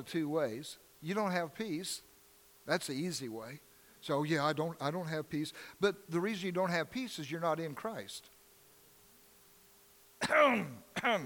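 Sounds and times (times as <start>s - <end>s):
speech: 0.0s - 8.3s, 10.2s - 11.2s
person clearing throat: 10.2s - 11.2s.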